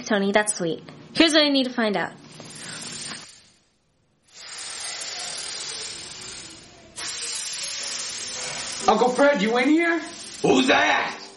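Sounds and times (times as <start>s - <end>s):
speech: 0.0s - 2.3s, 8.9s - 11.2s
steam hissing in a steam room: 2.3s - 3.6s, 4.3s - 11.3s.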